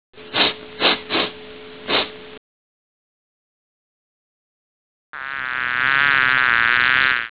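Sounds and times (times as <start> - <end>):
person sniffing: 0.4 - 2.2
bee buzzing: 5.2 - 7.2.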